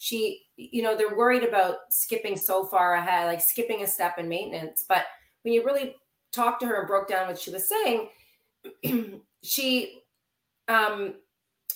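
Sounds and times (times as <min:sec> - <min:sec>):
speech: 0:00.0 - 0:10.0, 0:10.7 - 0:11.2
sick person coughing: 0:08.7 - 0:09.2.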